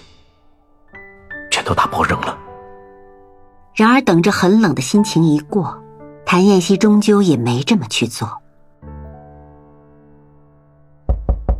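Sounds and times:
speech: 0:01.6 - 0:02.4, 0:03.8 - 0:08.4
knocking on a door: 0:11.1 - 0:11.5.

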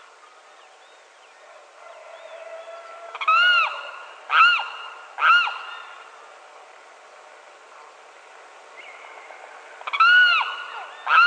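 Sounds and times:
Limpkin Aramus guarauna wailing cry: 0:01.8 - 0:06.0, 0:09.8 - 0:11.2.

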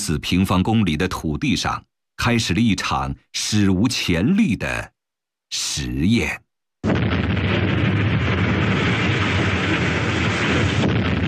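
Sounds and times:
speech: 0:00.0 - 0:04.9, 0:05.5 - 0:06.4
archival recording of blasting explosions excavating a mountainside for harbor construction: 0:06.8 - 0:11.2.

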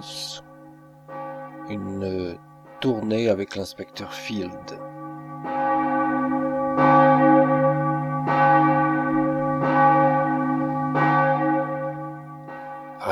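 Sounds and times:
church clock bell striking the hour: 0:00.0 - 0:13.1
speech: 0:01.7 - 0:04.9.

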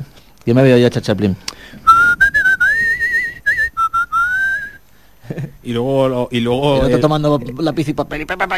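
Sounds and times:
speech: 0:00.5 - 0:01.8, 0:05.3 - 0:08.5
person whistling a film theme melody solo: 0:01.9 - 0:04.8.

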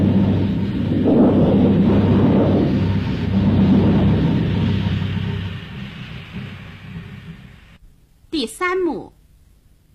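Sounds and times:
thunder rolling in a thunderstorm: 0:00.0 - 0:07.8
speech: 0:08.4 - 0:09.1.

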